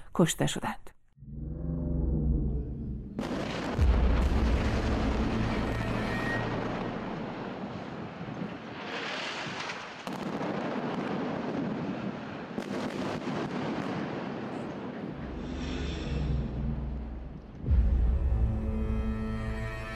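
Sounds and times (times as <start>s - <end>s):
speech: 0.2s - 0.9s
low droning rumble: 1.2s - 7.6s, 15.2s - 19.9s
roaring explosion of a cannon bursting apart: 3.0s - 17.9s
cannon blast from double gunpowder: 3.2s - 17.7s.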